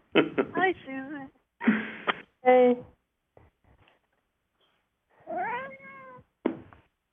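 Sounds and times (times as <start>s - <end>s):
speech: 0.2s - 2.9s
cat meowing: 5.2s - 6.3s.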